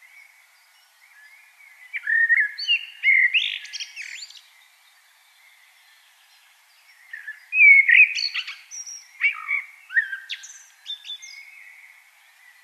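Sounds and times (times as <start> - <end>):
common blackbird Turdus merula singing: 0.0 - 12.6.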